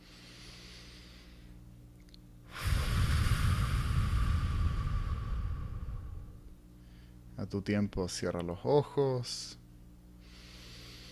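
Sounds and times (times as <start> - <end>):
slow deep breath of a person meditating: 0.0 - 1.6, 2.5 - 7.3, 10.2 - 11.1
speech: 7.4 - 9.6.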